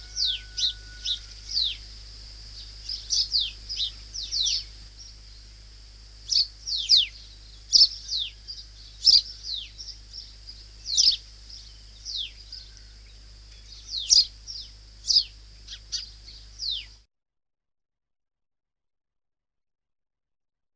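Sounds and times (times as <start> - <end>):
faint low hum: 0.0 - 17.0
white-eye calling: 0.0 - 17.0.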